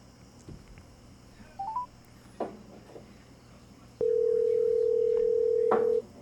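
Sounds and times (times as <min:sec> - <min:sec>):
quick electronic beeps: 0:01.6 - 0:01.9
telephone ringing tone: 0:04.0 - 0:06.0.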